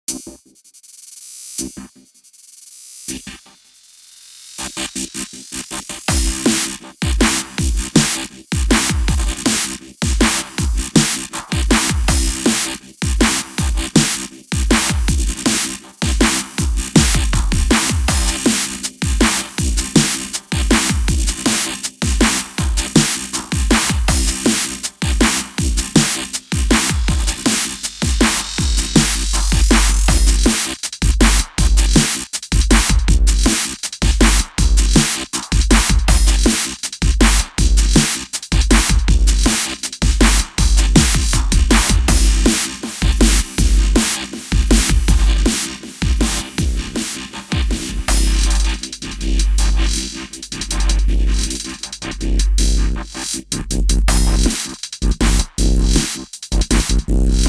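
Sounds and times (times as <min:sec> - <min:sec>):
drums: 0:00.1 - 0:57.4
bass: 0:04.6 - 0:57.4.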